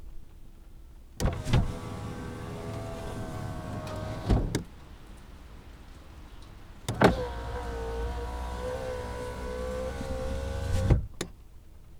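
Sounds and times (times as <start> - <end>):
car window opening and closing: 1.2 - 5.1, 6.5 - 11.4.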